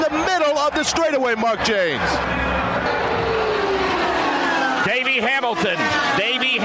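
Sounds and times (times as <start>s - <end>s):
speech: 0.8s - 3.0s, 4.8s - 6.6s
sharp rising whine: 1.5s - 6.6s
race cars roaring past at speed at the Indianapolis Motor Speedway: 1.8s - 6.6s.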